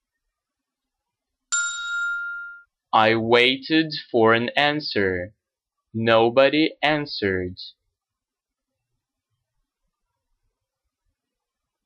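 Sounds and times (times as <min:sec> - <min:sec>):
bright electronic call button chime: 0:01.5 - 0:02.7
speech: 0:02.9 - 0:05.4, 0:06.0 - 0:07.8.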